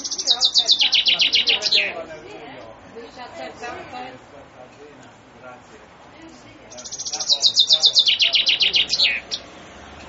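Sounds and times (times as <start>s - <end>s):
Common chaffinch song: 0.0s - 2.1s, 6.7s - 10.0s.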